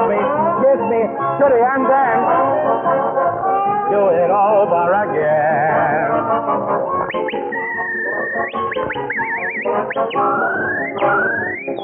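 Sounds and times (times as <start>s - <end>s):
full band accompaniment: 0.0s - 11.8s
speech: 1.4s - 3.2s, 3.9s - 11.8s
person whistling a tune with sliding and warbling notes: 7.0s - 11.8s.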